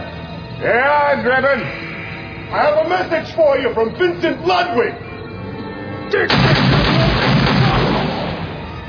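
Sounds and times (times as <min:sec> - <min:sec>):
speech: 0:00.6 - 0:01.8, 0:02.5 - 0:05.0, 0:06.1 - 0:06.7
gunshot blast: 0:06.3 - 0:08.7.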